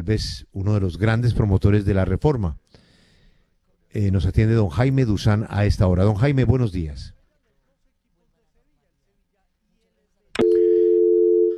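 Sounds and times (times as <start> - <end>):
speech: 0.0 - 2.6, 3.9 - 7.2
dial tone after a dropped phone call: 10.4 - 11.5
phone line click after a dropped phone call: 10.4 - 11.5.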